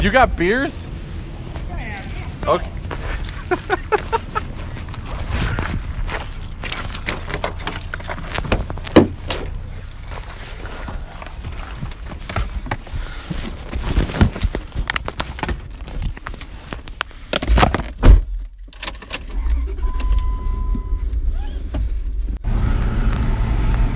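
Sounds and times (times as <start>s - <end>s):
speech: 0.0s - 1.0s, 2.4s - 2.8s, 3.5s - 4.2s
car engines rumbling as vehicles pull away: 0.0s - 23.9s
keys jangling and clattering: 1.8s - 4.1s, 6.1s - 8.4s, 18.4s - 20.3s
laughter: 3.1s - 4.8s.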